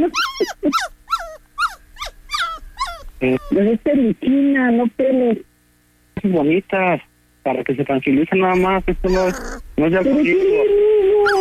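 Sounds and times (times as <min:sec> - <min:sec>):
speech: 0:00.0 - 0:00.9, 0:03.2 - 0:05.1, 0:06.4 - 0:11.4
small pet dog whimpering with high nasal whining yelps: 0:00.0 - 0:03.6, 0:08.5 - 0:09.6, 0:11.2 - 0:11.4
small pet dog growling: 0:00.0 - 0:03.7, 0:08.5 - 0:11.4.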